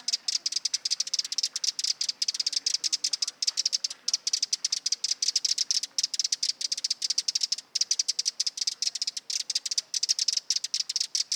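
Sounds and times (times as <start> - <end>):
Eurasian wren Troglodytes troglodytes troglodytes repeating hard high ticks: 0.0 - 11.3.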